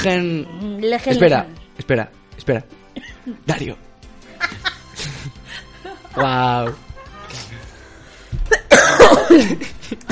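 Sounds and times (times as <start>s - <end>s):
speech: 0.0s - 3.9s, 6.1s - 6.8s, 9.2s - 10.1s
laughter: 4.2s - 7.6s
person coughing: 8.5s - 10.1s.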